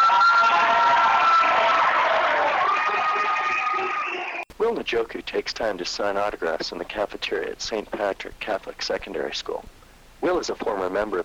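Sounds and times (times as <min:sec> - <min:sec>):
bright whoops from students: 0:00.0 - 0:04.4
crowd of young school students cheering and applauding: 0:00.0 - 0:04.4
speech: 0:04.8 - 0:11.2.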